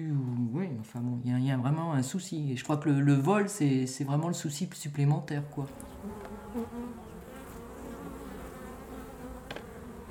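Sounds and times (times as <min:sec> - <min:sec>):
speech: 0:00.8 - 0:06.7
many honeybees buzzing at the hive: 0:05.5 - 0:10.1
individual bee wingbeats and clicks passing: 0:05.6 - 0:10.1.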